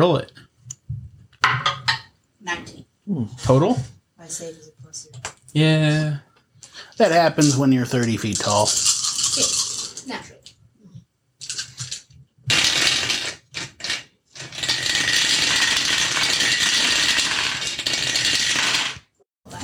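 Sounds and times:
speech: 0.0s - 0.4s, 2.4s - 6.3s, 6.9s - 10.4s
dice rattling down a dice tower: 7.4s - 10.1s, 11.4s - 19.1s.

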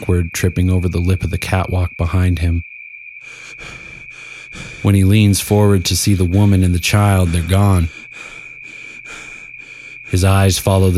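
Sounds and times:
speech: 0.0s - 3.8s, 4.6s - 8.3s, 10.1s - 10.9s
man panting: 3.2s - 5.0s, 6.4s - 10.2s.

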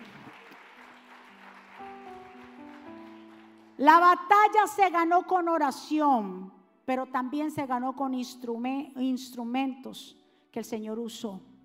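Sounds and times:
church audience applauding: 0.0s - 3.8s
speech: 3.8s - 11.5s.

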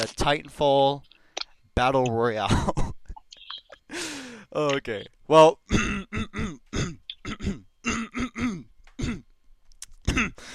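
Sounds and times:
speech: 0.0s - 1.1s, 1.8s - 2.9s, 4.5s - 6.4s
throat clearing: 5.7s - 9.3s, 10.1s - 10.4s.

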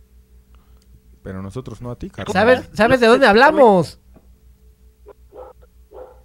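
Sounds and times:
low steady hum: 0.0s - 6.2s
speech: 1.2s - 4.0s
dog barking: 5.3s - 6.2s.

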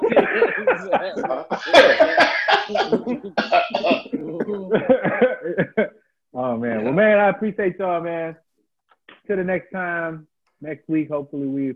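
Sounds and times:
raspy coughs: 0.0s - 5.8s
person chuckling: 0.0s - 5.9s
speech: 0.8s - 2.3s, 7.0s - 8.5s, 9.3s - 11.7s.

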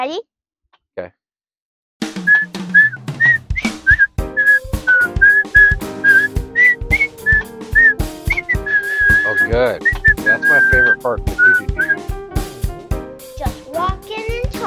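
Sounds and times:
speech: 0.0s - 0.4s, 1.0s - 1.2s, 9.5s - 12.1s
sharp percussive hits: 2.0s - 10.8s
person whistling a sly spy-style melody: 2.3s - 12.1s
plucked stepping bass line: 3.2s - 12.8s.

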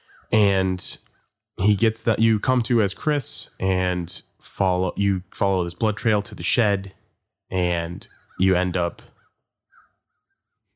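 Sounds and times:
speech: 0.3s - 9.1s
crows cawing: 9.2s - 10.3s.

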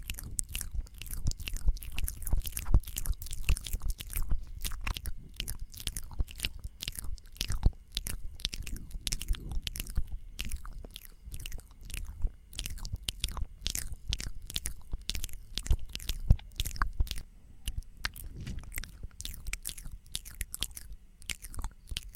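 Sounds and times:
layered mouth sounds of chewing and biting: 0.0s - 22.1s
low soft rumble: 8.1s - 10.9s, 15.7s - 20.1s.

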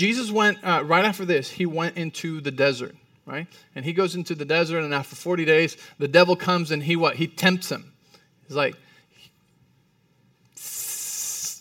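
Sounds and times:
speech: 0.0s - 7.9s, 8.5s - 8.8s
person imitating a snake's hiss: 10.6s - 11.6s.

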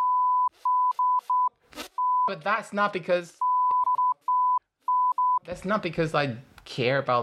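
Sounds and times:
censor bleep tone beeping out swear words: 0.0s - 2.3s, 3.4s - 5.4s
speech: 2.3s - 3.4s, 5.5s - 7.2s.

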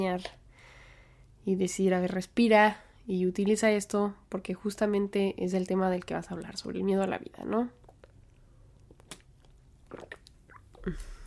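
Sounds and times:
speech: 0.0s - 0.4s, 1.5s - 7.8s, 10.8s - 11.2s
soft wet mouth clicks and smacks: 7.8s - 11.0s
gulping a big swallow of water: 7.8s - 11.2s.

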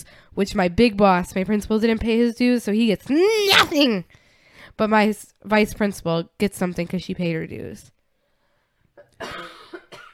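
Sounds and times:
speech: 0.0s - 4.2s, 4.8s - 8.0s, 9.2s - 9.5s
person coughing: 9.2s - 10.1s.

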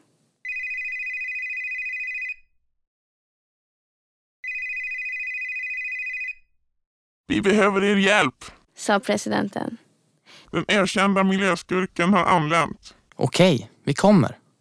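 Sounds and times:
telephone ringing with electronic trill: 0.0s - 2.3s, 4.4s - 6.3s
speech: 7.3s - 9.8s, 10.5s - 14.4s.

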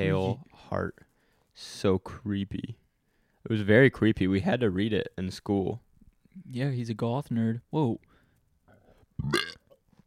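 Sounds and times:
speech: 0.0s - 2.8s, 3.4s - 5.8s, 6.4s - 8.1s, 9.2s - 9.6s
loud guttural burp: 9.2s - 9.8s.

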